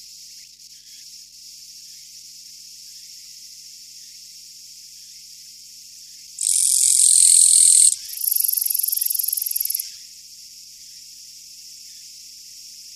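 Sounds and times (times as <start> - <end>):
Japanese katydid buzzing: 6.4 - 9.8.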